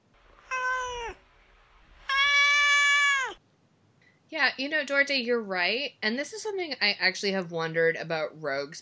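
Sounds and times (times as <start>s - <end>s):
cat meowing: 0.4s - 1.2s, 2.0s - 3.4s
speech: 4.3s - 8.8s.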